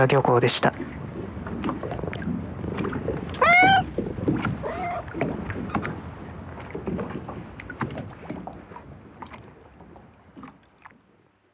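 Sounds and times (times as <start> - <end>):
harbor water lapping: 0.0 - 11.5
light wind: 0.0 - 11.5
friendly cat meowing at fishing port: 3.4 - 3.9, 4.6 - 5.1.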